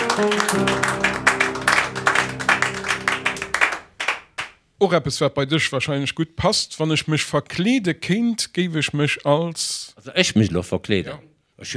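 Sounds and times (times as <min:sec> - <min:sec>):
sustained musical backing: 0:00.0 - 0:04.2
applause: 0:00.0 - 0:04.6
speech: 0:00.2 - 0:01.0, 0:04.8 - 0:11.7.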